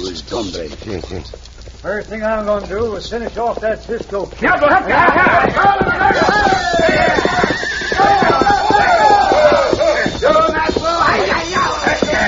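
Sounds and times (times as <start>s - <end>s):
galloping hoofbeats: 0.0s - 12.2s
speech: 0.3s - 7.2s
people shouting: 4.4s - 12.2s
horse whinnying: 4.9s - 12.2s.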